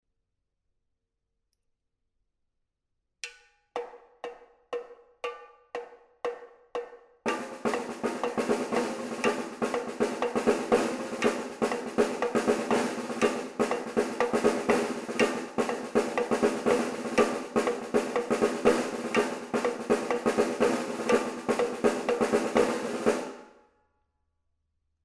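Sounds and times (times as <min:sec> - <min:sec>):
snare drum march: 0:07.3 - 0:23.4.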